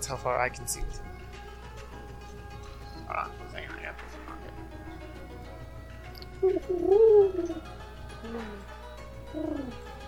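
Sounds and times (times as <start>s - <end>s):
speech: 0.0s - 1.1s, 3.1s - 4.7s, 6.4s - 8.7s, 9.3s - 9.8s
female owl hooting: 6.4s - 7.7s, 9.3s - 9.8s.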